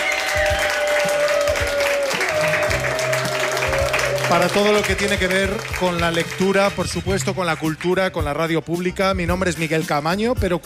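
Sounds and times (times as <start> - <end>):
audience applause at a book fair: 0.0 - 7.8
speech: 4.3 - 10.6.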